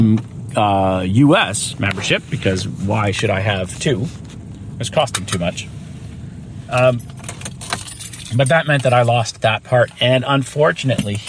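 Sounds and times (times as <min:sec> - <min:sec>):
steady low hum: 0:00.0 - 0:11.2
speech: 0:00.2 - 0:05.8, 0:06.7 - 0:07.1, 0:08.3 - 0:11.2
keys jangling close to the microphone: 0:06.8 - 0:09.2.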